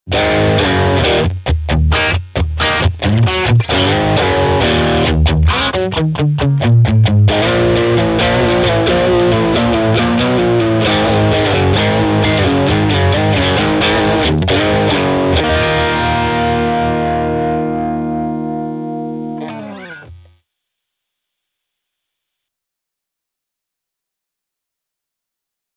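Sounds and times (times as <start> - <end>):
blues overdrive rhythm guitar with effects: 0.1 - 20.3.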